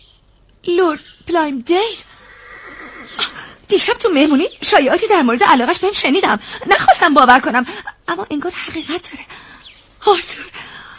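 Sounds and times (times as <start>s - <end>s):
speech: 0.6s - 2.1s, 3.1s - 9.4s, 10.0s - 10.6s
horse neighing: 2.1s - 3.6s.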